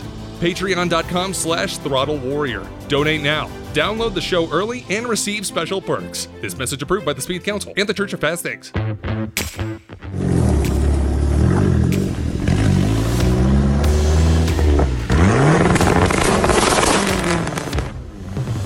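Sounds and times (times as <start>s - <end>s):
speech: 0.4s - 9.8s
turbocharged Dodge Neon SRT4 engine revving: 10.0s - 18.6s.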